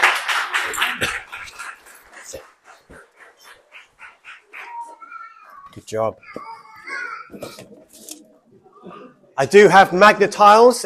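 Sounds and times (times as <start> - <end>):
small group clapping: 0.0 - 3.2
speech: 5.8 - 6.5, 7.3 - 8.0, 9.4 - 10.8.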